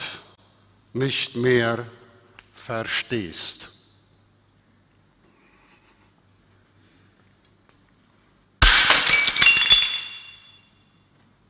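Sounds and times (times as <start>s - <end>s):
speech: 0.9s - 2.0s, 2.6s - 3.7s
ceramic plate smashing: 8.6s - 10.6s
tinkling ceramic shards clattering and settling: 8.6s - 10.6s.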